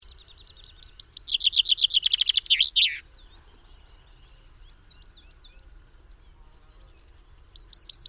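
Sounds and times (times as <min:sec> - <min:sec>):
Common chaffinch song, Fringilla coelebs: 0:00.0 - 0:08.0
faint chirps: 0:00.0 - 0:08.0.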